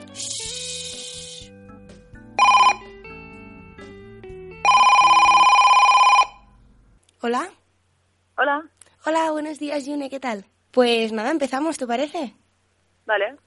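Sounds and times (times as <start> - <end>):
short hiss: 0.0 - 1.6
soft music bed: 0.0 - 5.3
outgoing phone call ring tone: 2.4 - 2.9, 4.6 - 6.6
speech: 7.2 - 7.6, 8.4 - 12.4, 13.1 - 13.4.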